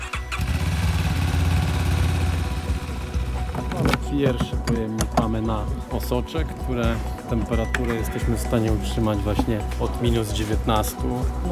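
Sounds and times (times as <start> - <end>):
motorcycle ambulance engine starting with a brief crank: 0.0 - 4.7
motorcycle ambulance engine idling with a low rumbling pulse: 0.3 - 3.8
speech: 4.1 - 11.5.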